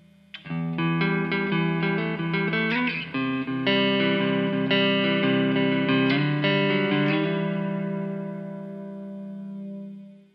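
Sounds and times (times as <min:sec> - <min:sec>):
electric guitar through a preamp clean channel with FV1 reverb: 0:00.0 - 0:10.3.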